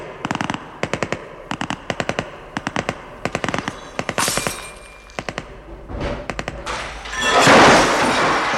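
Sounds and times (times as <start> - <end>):
automatic gunfire bursts in a shootout between police and men in a villa: 0.0 - 5.6
scattered heavier gunshots: 0.0 - 8.4.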